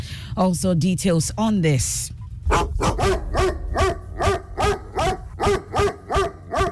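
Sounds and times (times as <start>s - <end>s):
speech: 0.4s - 2.2s
dog barking: 2.5s - 6.7s.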